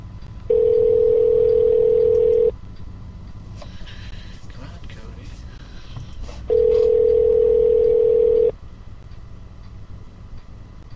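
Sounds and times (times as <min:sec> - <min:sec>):
telephone dial tone while dialing a call: 0:00.5 - 0:02.5, 0:06.5 - 0:08.5.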